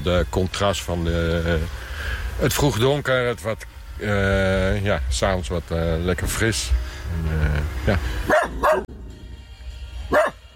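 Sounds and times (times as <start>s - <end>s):
speech: 0.0s - 9.0s
dog barking: 8.3s - 8.9s, 10.1s - 10.4s.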